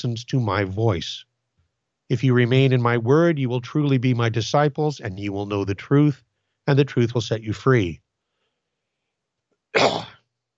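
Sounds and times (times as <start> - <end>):
speech: 0.0 - 1.3, 2.1 - 8.0, 9.7 - 10.1
sharp cough in a home studio: 9.8 - 10.2.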